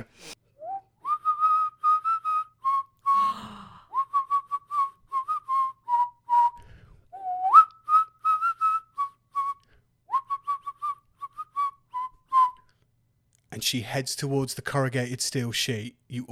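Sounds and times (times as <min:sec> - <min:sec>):
person whistling a wobbly off-key tune: 0:00.6 - 0:12.7
speech: 0:13.6 - 0:16.3.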